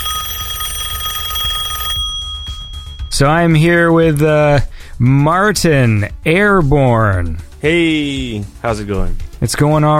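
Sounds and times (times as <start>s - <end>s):
telephone ringing: 0.0s - 3.8s
speech: 3.2s - 9.9s.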